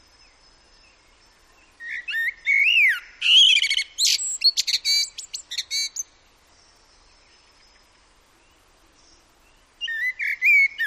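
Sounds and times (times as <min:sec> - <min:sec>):
common blackbird singing: 0:00.2 - 0:06.1, 0:08.5 - 0:10.8.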